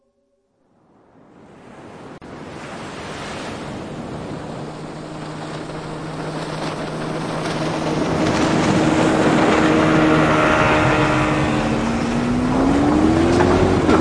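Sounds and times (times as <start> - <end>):
wind: 0.0 - 13.9
rushing water: 1.8 - 13.9
motorboat engine droning and running rough: 2.3 - 13.9.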